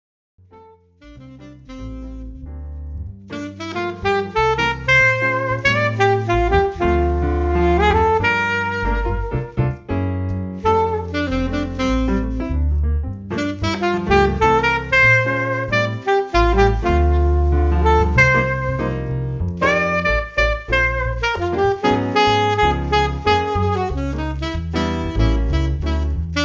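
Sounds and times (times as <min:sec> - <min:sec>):
jazz keyboard: 0:00.4 - 0:26.4.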